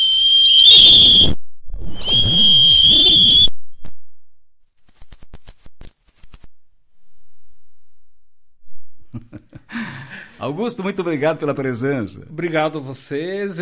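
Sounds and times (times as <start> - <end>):
long loud shrill whistle blasts: 0.0 - 3.8
speech: 0.9 - 1.4, 10.4 - 13.6.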